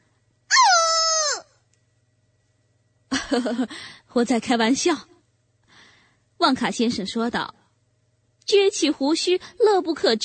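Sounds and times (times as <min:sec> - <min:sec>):
woman shrieking in anger: 0:00.5 - 0:01.6
speech: 0:03.3 - 0:05.1, 0:06.4 - 0:07.6, 0:08.5 - 0:10.2.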